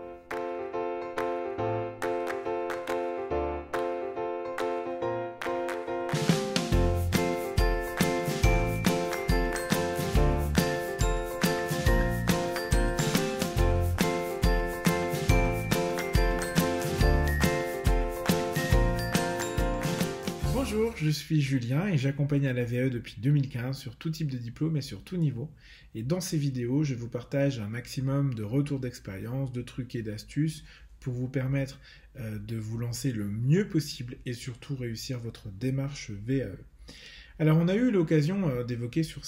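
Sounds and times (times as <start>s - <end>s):
fuller upbeat tune with steady rhythmic percussion and sustained melodic tones: 0.0s - 21.1s
bright tinkling podcast intro theme jingle: 0.0s - 21.5s
sparse chime-like notes: 7.5s - 21.0s
speech: 21.0s - 39.2s.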